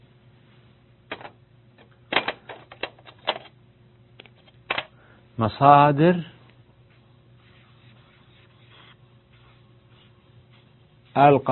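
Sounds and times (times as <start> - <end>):
speech: 5.4 - 6.3, 11.2 - 11.5
pen strokes on a board during a lesson: 7.6 - 10.2.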